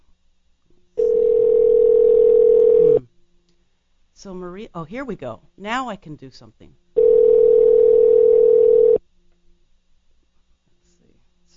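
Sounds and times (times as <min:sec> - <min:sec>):
telephone dial tone while placing call: 0:01.0 - 0:03.0, 0:07.0 - 0:09.0
speech: 0:04.2 - 0:06.8.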